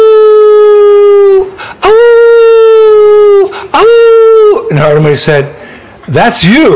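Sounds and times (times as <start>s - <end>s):
person's voice imitating a dog howling: 0.0s - 4.7s
speech: 4.9s - 6.7s.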